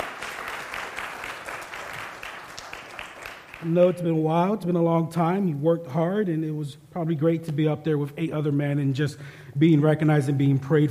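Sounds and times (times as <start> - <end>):
crowd applauding: 0.0 - 3.7
speech: 3.6 - 10.8.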